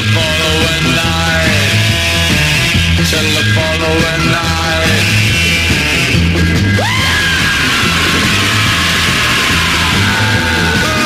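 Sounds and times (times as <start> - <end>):
loud driving rock band with distorted instruments: 0.0 - 11.0
pounding repeated bass line: 0.0 - 11.0
raw vocal long rising scream: 6.8 - 11.0.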